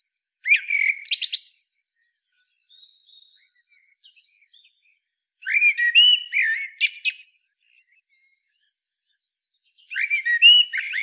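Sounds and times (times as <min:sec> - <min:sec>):
Turdus merula Eurasian blackbird singing mellow fluted whistles: 0:00.4 - 0:01.4, 0:05.4 - 0:07.3, 0:09.9 - 0:11.0.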